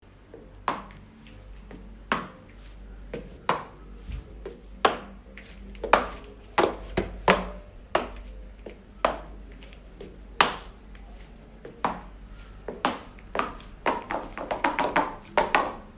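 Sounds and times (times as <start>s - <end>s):
high heels footsteps: 0.3s - 15.9s.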